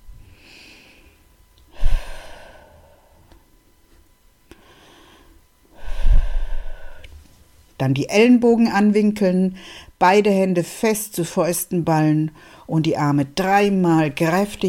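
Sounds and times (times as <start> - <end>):
deep breathing in and out during a guided relaxation exercise: 0.2 - 3.4, 4.5 - 7.2
speech: 7.8 - 14.6.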